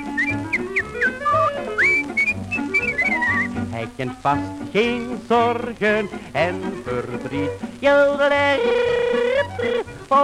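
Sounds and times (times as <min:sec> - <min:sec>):
person whistling a bright bouncy melody: 0:00.0 - 0:03.6
soft musical accompaniment: 0:00.0 - 0:10.2
speech: 0:03.8 - 0:10.2.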